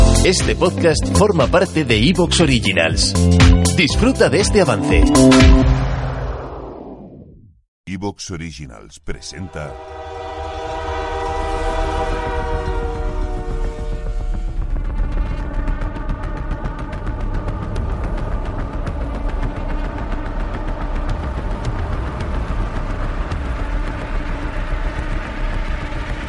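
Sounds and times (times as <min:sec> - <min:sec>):
speech: 0:00.2 - 0:05.8, 0:07.9 - 0:10.1
train horn blaring: 0:09.2 - 0:16.3
moving train rumbling and clattering: 0:09.7 - 0:26.2.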